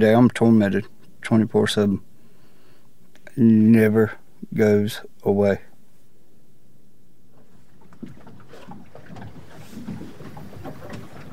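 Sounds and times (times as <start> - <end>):
speech: 0.0 - 2.1, 3.4 - 5.7
boat motoring across open water: 0.0 - 11.3
splashing and slapping water: 7.3 - 11.3.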